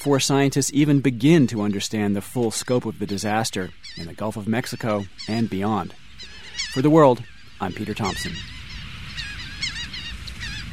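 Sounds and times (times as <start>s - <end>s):
speech: 0.0s - 6.0s, 6.8s - 8.6s
harsh honking bird calls: 3.0s - 10.7s.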